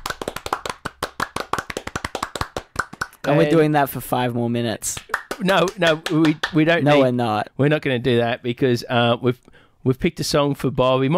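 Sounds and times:
applause for a child: 0.0s - 3.6s, 4.9s - 7.0s
speech: 3.2s - 11.1s.

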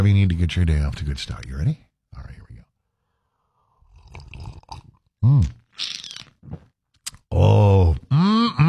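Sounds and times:
speech: 0.0s - 1.9s
person slurping hot coffee from a cup: 3.8s - 6.8s
smaller sips and mouth sounds: 3.8s - 7.2s
person groaning and sighing with satisfaction: 5.2s - 5.6s, 7.3s - 8.6s.

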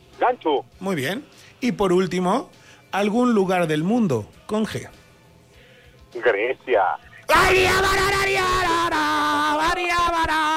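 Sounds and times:
speech: 0.3s - 5.0s, 6.1s - 9.1s
person shouting excitedly: 7.3s - 10.5s.

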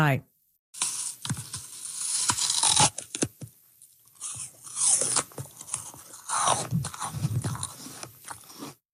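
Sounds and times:
speech: 0.0s - 0.9s
biting into a crispy crunchy apple: 0.8s - 3.5s, 4.1s - 8.8s
wet chewing of a crisp apple: 2.6s - 8.8s.

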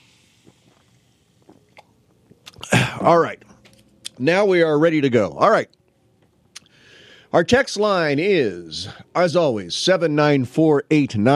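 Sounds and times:
carbonated diet cola fizzing: 0.0s - 2.6s
sipping and swallowing diet cola: 0.1s - 3.0s
speech: 3.0s - 3.5s, 4.2s - 5.8s, 7.3s - 11.3s.

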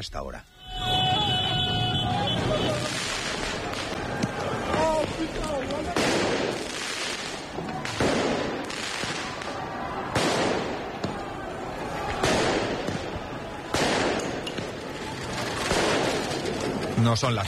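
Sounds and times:
speech: 0.0s - 1.2s, 5.2s - 6.7s, 17.0s - 17.4s
fireworks bangs during street celebrations: 0.6s - 17.0s
large street crowd roaring and shouting: 0.6s - 17.0s
riot-gun rubber bullet shots: 2.3s - 14.7s, 15.4s - 16.8s.

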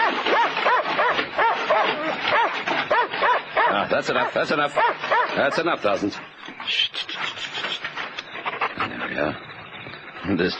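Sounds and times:
dog barking behind a wire fence: 0.0s - 5.7s
speech: 4.0s - 6.8s, 9.2s - 9.5s, 10.2s - 10.5s.

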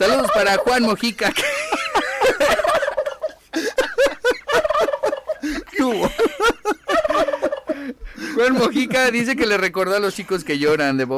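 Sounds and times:
speech: 0.0s - 2.7s, 8.4s - 11.1s
laughter: 0.0s - 9.6s
turkey gobbling: 4.6s - 5.3s, 6.9s - 7.7s.

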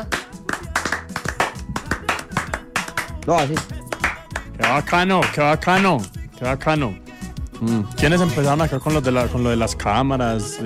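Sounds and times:
hosts clapping hands in studio: 0.0s - 6.1s
speech: 3.2s - 3.8s, 4.6s - 7.0s, 7.6s - 10.6s.

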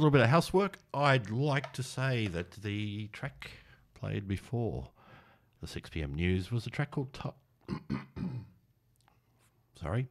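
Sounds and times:
speech: 0.0s - 5.0s, 5.6s - 8.5s, 9.8s - 10.0s
throat clearing: 7.6s - 8.6s.

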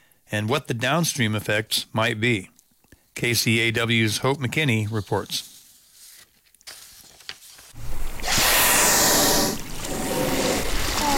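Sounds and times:
speech: 0.3s - 2.5s, 3.2s - 5.5s
gray whale surfacing and blowing near a 20-foot inflatable boat in Sitka Sound: 7.8s - 11.0s
steady watery hiss: 7.8s - 11.1s.

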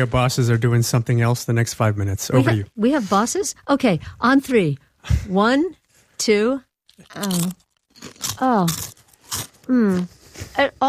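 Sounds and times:
speech: 0.0s - 10.8s
crunching bites of crisp food: 6.9s - 10.1s.

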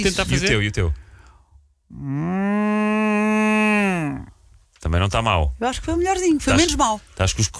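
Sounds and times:
speech: 0.0s - 1.0s, 1.9s - 3.2s, 4.0s - 7.5s
person imitating a cow mooing: 1.9s - 4.4s.

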